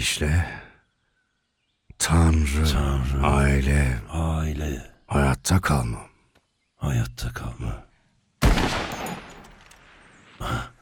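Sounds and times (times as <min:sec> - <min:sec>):
speech: 0:00.0 - 0:00.6, 0:02.0 - 0:06.1, 0:06.8 - 0:07.9, 0:10.4 - 0:10.7
gunshots while hunting: 0:08.4 - 0:10.0.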